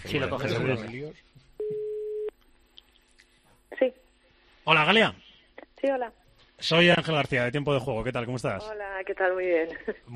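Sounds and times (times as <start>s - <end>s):
speech: 0.0s - 1.4s, 3.8s - 4.0s, 4.7s - 5.2s, 5.8s - 10.1s
telephone ringback tone while placing a call: 1.6s - 2.3s.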